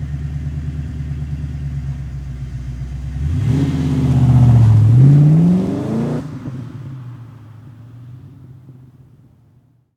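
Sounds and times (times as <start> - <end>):
Mustang car taking off: 3.1 - 7.8.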